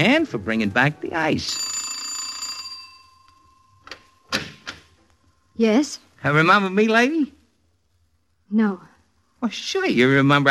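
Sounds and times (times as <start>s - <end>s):
speech: 0.0s - 1.7s, 5.6s - 7.4s, 8.5s - 10.4s
doorbell of a very large house ringing: 1.4s - 3.9s.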